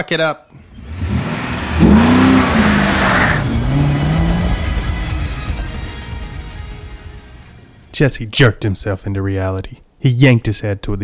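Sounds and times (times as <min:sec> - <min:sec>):
speech: 0:00.0 - 0:00.6, 0:07.9 - 0:11.0
55 Supersport car engine revving and driving away: 0:00.6 - 0:07.6.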